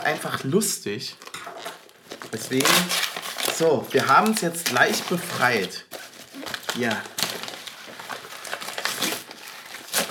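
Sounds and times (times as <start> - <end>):
speech: 0.0 - 1.6, 2.3 - 5.9, 6.8 - 7.2
wrapping crinkling and tearing as a wrapped package is ripped open: 1.2 - 10.0.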